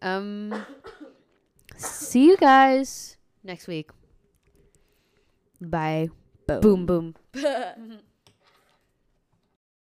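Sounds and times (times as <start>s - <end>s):
speech: 0.0s - 0.8s, 2.1s - 4.0s, 5.6s - 8.1s
rough breathy coughs: 0.5s - 1.3s.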